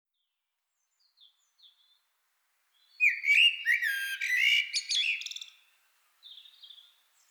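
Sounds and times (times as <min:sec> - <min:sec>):
common blackbird Turdus merula singing: 0:03.0 - 0:05.6.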